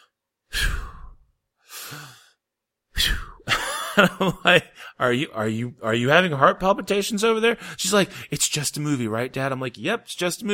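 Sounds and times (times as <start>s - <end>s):
voice imitating anxious heavy breathing: 0.0s - 2.4s, 3.0s - 3.5s
laughter: 3.5s - 4.8s
speech: 4.0s - 10.5s.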